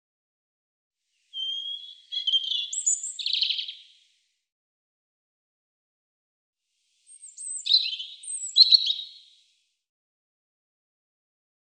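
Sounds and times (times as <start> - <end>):
European robin singing: 1.3 - 4.0, 7.1 - 9.4.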